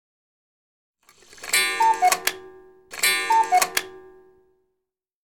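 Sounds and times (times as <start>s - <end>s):
clock chime tones: 1.2s - 4.5s.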